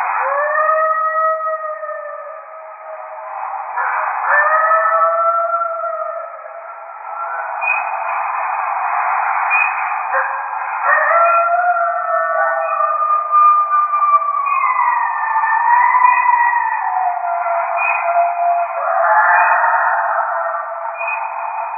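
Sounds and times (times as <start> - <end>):
coyote group calling: 0.1 - 21.7.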